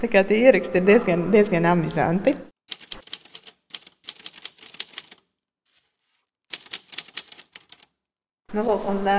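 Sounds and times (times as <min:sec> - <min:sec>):
speech: 0:00.0 - 0:02.5, 0:08.5 - 0:09.1
typewriter keys clacking in a museum: 0:02.7 - 0:05.3, 0:06.5 - 0:07.9.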